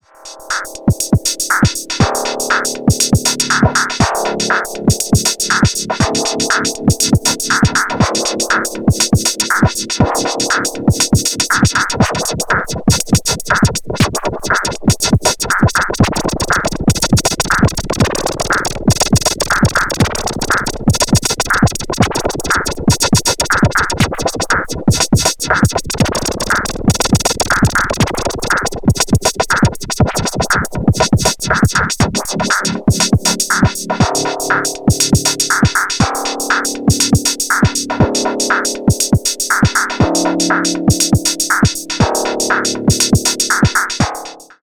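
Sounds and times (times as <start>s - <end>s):
drum machine modulation: 0.1s - 44.6s.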